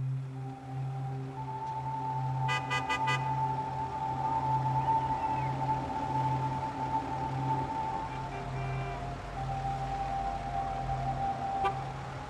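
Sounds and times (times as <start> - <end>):
idling engines rumbling in a dense motorway traffic jam: 0.2 - 12.2
car horns honking: 2.5 - 3.4, 8.3 - 9.0.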